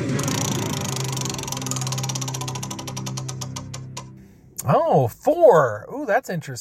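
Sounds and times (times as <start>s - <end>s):
game wheel spun to pick a number, whirring and ticking: 0.1s - 4.1s
speech: 4.7s - 6.5s.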